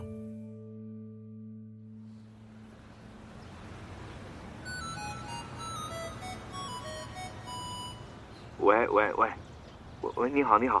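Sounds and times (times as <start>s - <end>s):
Nokia 8210 mobile phone ringing with melodic electronic ringtone in a pocket: 4.6s - 8.1s
speech: 8.6s - 9.4s, 10.0s - 10.7s.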